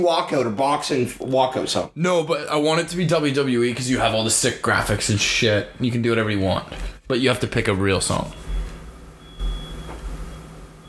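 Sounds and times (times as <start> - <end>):
speech: 0.0 - 8.4
high-pitched alarm tone outside: 8.4 - 10.8.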